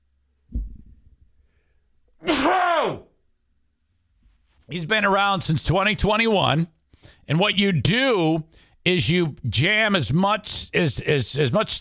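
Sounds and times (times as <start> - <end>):
loud voiced achoo sneeze: 2.2 - 3.1
speech: 4.7 - 11.8.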